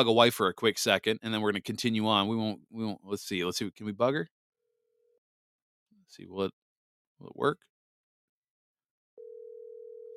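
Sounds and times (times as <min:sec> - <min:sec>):
speech: 0:00.0 - 0:04.4, 0:06.1 - 0:06.6, 0:07.2 - 0:07.7
steady telephone call tone over the line: 0:09.2 - 0:10.1.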